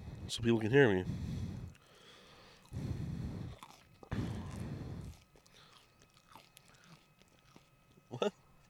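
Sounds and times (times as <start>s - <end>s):
speech: 0.3s - 1.3s
chewing fries close to the microphone: 1.6s - 8.6s.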